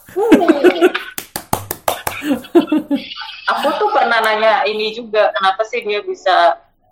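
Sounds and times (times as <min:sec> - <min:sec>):
laughter: 0:00.0 - 0:01.2, 0:01.9 - 0:04.2
sharp hand claps: 0:00.7 - 0:02.4
speech: 0:04.7 - 0:06.6.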